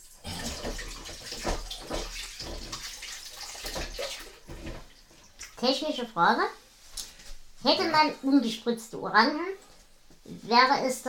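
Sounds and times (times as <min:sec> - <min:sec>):
hands washed clean of orange juice under running tap water in a kitchen: 0:00.0 - 0:05.6
speech: 0:05.6 - 0:06.6, 0:07.6 - 0:09.6, 0:10.3 - 0:11.0.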